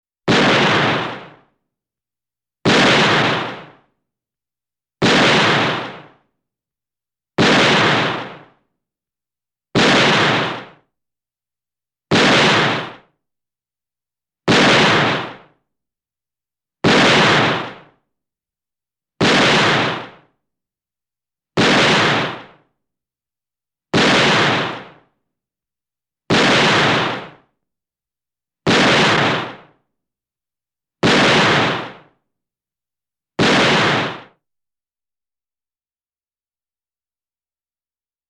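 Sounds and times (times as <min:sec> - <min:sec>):
vintage movie gunshot: 0:00.3 - 0:01.6, 0:02.6 - 0:04.0, 0:05.0 - 0:06.3, 0:07.4 - 0:08.7, 0:09.8 - 0:10.9, 0:12.1 - 0:13.2, 0:14.5 - 0:15.6, 0:16.8 - 0:18.0, 0:19.2 - 0:20.4, 0:21.6 - 0:22.7, 0:23.9 - 0:25.2, 0:26.3 - 0:27.6, 0:28.6 - 0:29.9, 0:31.0 - 0:32.2, 0:33.4 - 0:34.4.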